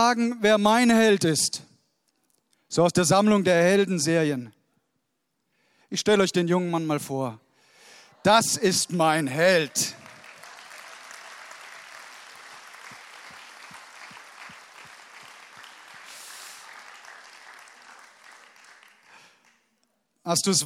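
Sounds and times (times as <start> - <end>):
speech: 0.0 - 1.7, 2.7 - 4.6, 5.9 - 7.4, 8.2 - 10.0, 20.3 - 20.6
crowd applauding: 8.2 - 19.8.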